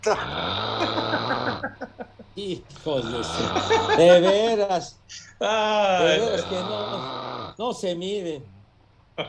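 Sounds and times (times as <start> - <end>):
laughter: 0.0 - 7.1
speech: 0.0 - 8.6
person imitating loud snoring: 0.1 - 1.7, 2.8 - 4.4, 5.7 - 7.6.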